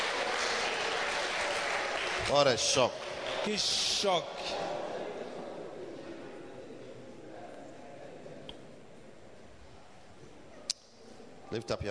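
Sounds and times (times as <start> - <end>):
crowd applauding: 0.0 - 4.5
speech: 2.3 - 4.8, 11.5 - 11.9.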